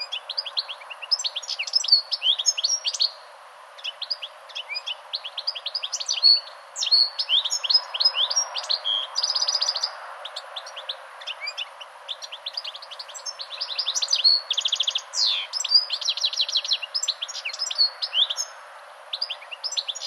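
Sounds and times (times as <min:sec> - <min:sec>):
European goldfinch singing: 0:00.0 - 0:20.0
speech: 0:06.3 - 0:07.4.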